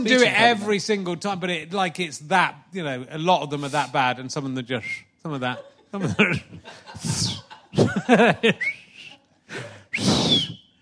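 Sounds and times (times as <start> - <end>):
speech: 0.0 - 8.8
laughter: 5.4 - 9.8
person whistling in short breathy bursts: 8.6 - 9.2, 9.9 - 10.8.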